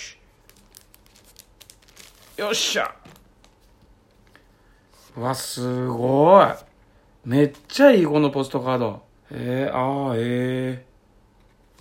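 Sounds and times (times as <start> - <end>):
live CD packaging carefully torn open, crinkling: 0.3 - 4.3
speech: 2.4 - 3.2, 5.2 - 10.9.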